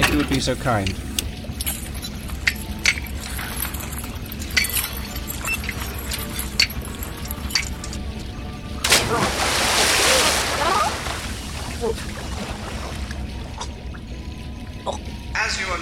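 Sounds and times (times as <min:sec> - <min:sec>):
tide water seeping and sloshing into a sea cavern: 0:00.0 - 0:15.8
speech: 0:00.3 - 0:01.1
metallic clinks: 0:01.4 - 0:08.6.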